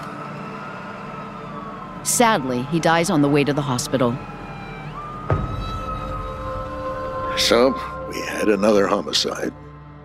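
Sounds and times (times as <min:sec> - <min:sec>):
ambulance engine and road rumble: 0:00.0 - 0:10.0
ambulance siren wailing: 0:00.0 - 0:10.0
speech: 0:02.0 - 0:04.3, 0:07.5 - 0:09.6.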